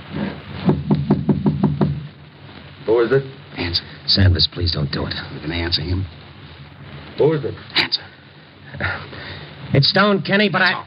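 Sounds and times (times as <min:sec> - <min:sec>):
knocking on a door: 0:00.6 - 0:02.1
speech: 0:02.9 - 0:06.2, 0:07.2 - 0:08.1, 0:08.8 - 0:10.8.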